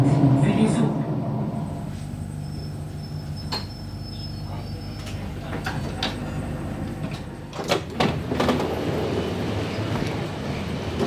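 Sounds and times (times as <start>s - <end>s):
crowded passenger train rumbling with a low mechanical drone: 0.0s - 11.0s
train sliding doors opening: 5.0s - 11.0s.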